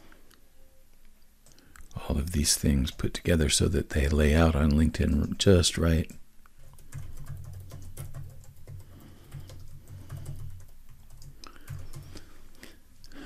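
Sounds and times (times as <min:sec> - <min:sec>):
speech: 0:02.1 - 0:06.2
rapid typing on a computer keyboard: 0:06.6 - 0:12.3.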